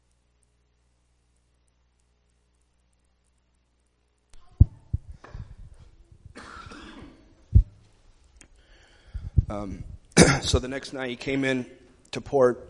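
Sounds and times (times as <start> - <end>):
person coughing into a microphone: 6.3 - 7.3, 10.2 - 10.6
throat clearing: 6.3 - 7.3, 10.2 - 10.6
speech: 9.5 - 12.6.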